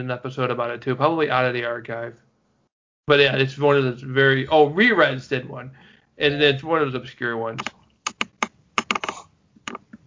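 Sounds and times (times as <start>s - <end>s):
speech: 0.0s - 2.2s, 3.1s - 7.8s
computer keyboard keys clacking: 7.6s - 10.0s.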